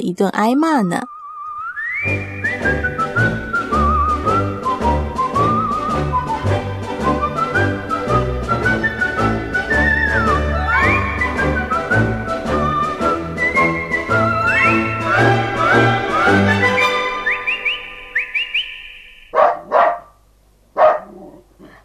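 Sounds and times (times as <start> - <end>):
speech: 0.0 - 1.1, 2.0 - 3.0
short whistly melody with sliding notes: 1.1 - 19.1
dog barking: 19.3 - 20.2, 20.8 - 21.4.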